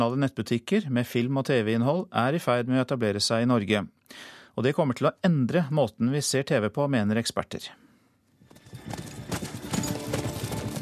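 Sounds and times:
speech: 0.0s - 7.8s
horse hooves clip-clopping: 8.4s - 10.7s.

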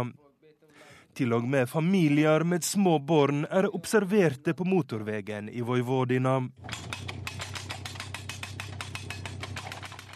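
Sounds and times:
speech: 0.0s - 0.2s, 1.2s - 7.0s
machine pounding fence posts into ground: 6.6s - 10.1s
post driving machine engine droning: 6.6s - 10.1s.

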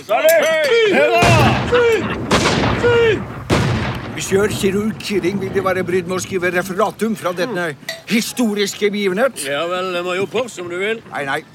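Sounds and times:
speech: 0.0s - 2.2s, 4.2s - 11.5s
voices calling out: 0.0s - 11.5s
ceremonial gun salute shots with long echo: 1.1s - 5.4s.

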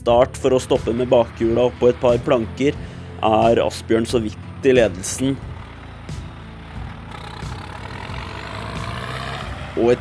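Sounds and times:
speech: 0.0s - 5.5s, 9.8s - 9.9s
tractor engine running during a race: 0.0s - 9.9s.

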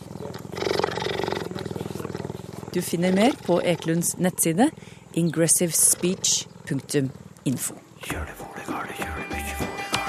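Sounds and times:
cheetah purring on exhale and inhale: 0.0s - 10.0s
speech: 2.8s - 9.0s.

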